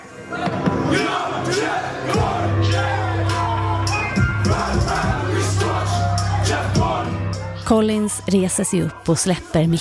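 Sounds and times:
large concert crowd cheering and singing a chorus: 0.0s - 9.7s
speech: 7.7s - 9.7s.

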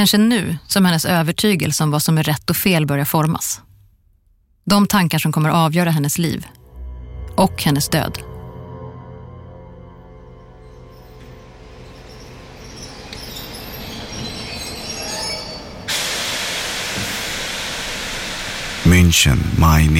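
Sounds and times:
speech: 0.0s - 3.7s, 4.7s - 6.6s, 7.4s - 8.3s, 19.0s - 19.9s
train arriving in Munich rumbling and slowing: 6.6s - 19.9s
squealing train wheels: 11.0s - 16.4s
rattling train cars: 11.9s - 17.7s
hissing air or steam from train: 15.8s - 19.1s.

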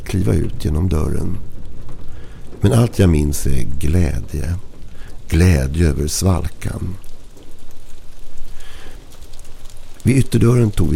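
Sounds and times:
cold rain falling: 0.0s - 10.9s
speech: 0.1s - 1.5s, 2.6s - 4.7s, 5.3s - 7.1s, 10.0s - 10.9s.

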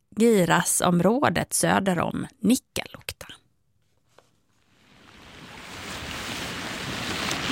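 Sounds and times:
speech: 0.2s - 3.4s
mountain stream flowing south of Nikkaluokta: 4.7s - 7.5s.

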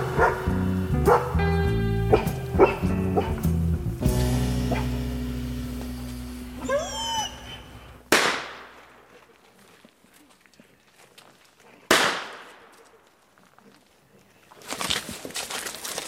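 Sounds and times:
footsteps: 0.0s - 6.8s, 7.4s - 16.0s
rustling movement: 0.0s - 16.0s
gunshots outdoors: 8.1s - 9.2s, 11.9s - 12.8s.

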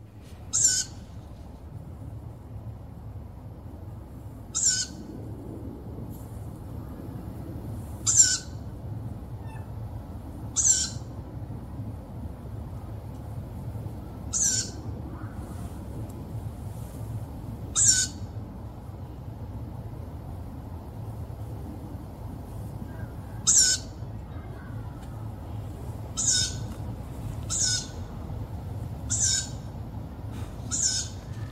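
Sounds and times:
low rumble of noise: 0.0s - 31.5s
owl calling at night near Gothenburg Sweden: 0.2s - 1.4s, 4.5s - 5.0s, 8.1s - 8.6s, 9.4s - 9.7s, 10.6s - 11.1s, 14.3s - 14.8s, 17.8s - 18.3s, 23.4s - 24.0s, 26.2s - 26.7s, 27.5s - 28.1s, 29.1s - 29.7s, 30.6s - 31.4s.

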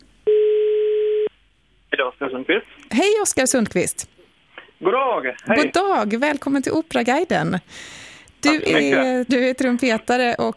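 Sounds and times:
telephone ringing tone as a call is placed: 0.3s - 1.3s
speech: 2.2s - 4.1s, 4.8s - 10.5s.

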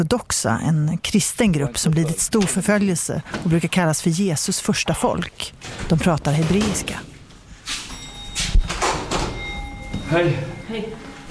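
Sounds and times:
speech: 0.0s - 7.1s, 10.1s - 11.3s
front door opening at a home in a mountain village in southeastern Turkey: 2.3s - 3.7s, 5.5s - 11.3s.

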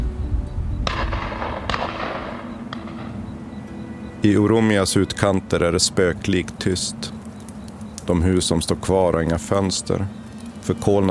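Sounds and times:
constant low rumble: 0.0s - 3.6s
gunfire bursts at night during wartime: 0.8s - 3.2s
speech: 4.2s - 7.2s, 8.1s - 11.0s.

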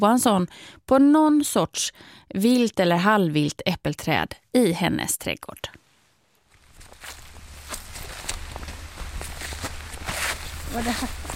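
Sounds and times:
speech: 0.0s - 5.8s, 10.7s - 11.2s
footsteps climbing a steep garden slope toward an apple tree: 6.4s - 11.3s.

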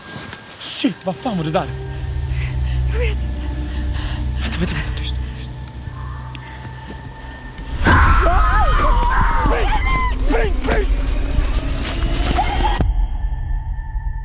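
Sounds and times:
speech: 0.8s - 1.8s, 4.6s - 5.0s
steady low hum: 1.4s - 14.0s
fox screaming at night: 7.8s - 10.6s.

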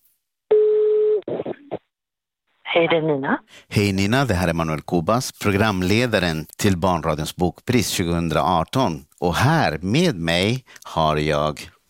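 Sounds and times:
telephone line tone while calling someone: 0.5s - 1.2s
speech: 2.8s - 11.8s.

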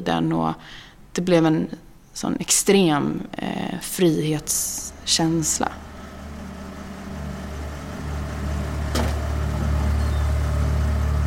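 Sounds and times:
speech: 0.0s - 5.8s
car driving through western Sweden heard from inside the cabin: 4.7s - 11.2s.

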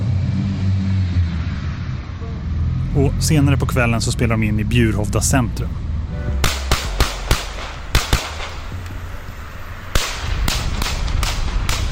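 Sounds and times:
steady outdoor rumble: 0.0s - 11.9s
speech: 3.0s - 5.9s
sharp gunshots fired into the air from a car in Västerås Sweden: 6.4s - 8.7s, 9.9s - 11.9s.

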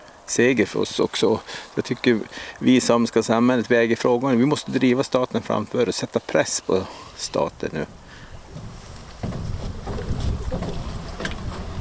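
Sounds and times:
speech: 0.3s - 8.6s
wind noise: 7.3s - 11.8s
small boat hull knocking and scraping against stones at the water's edge: 8.5s - 11.8s.

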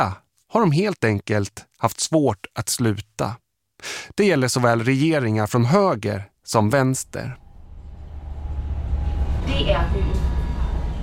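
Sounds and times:
speech: 0.0s - 7.4s, 9.5s - 10.0s
low rumble of a moving train interior: 7.1s - 11.0s
continuous hum: 7.2s - 11.0s.

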